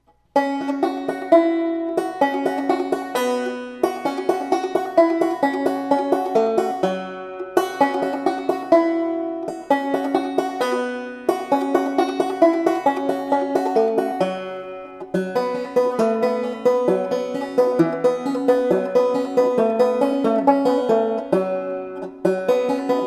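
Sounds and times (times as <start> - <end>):
spooky banjo: 0.0 - 23.0.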